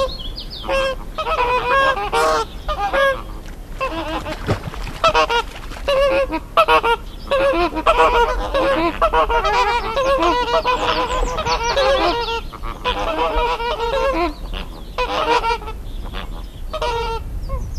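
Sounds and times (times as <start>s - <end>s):
greater flamingos calling together: 0.0s - 17.6s.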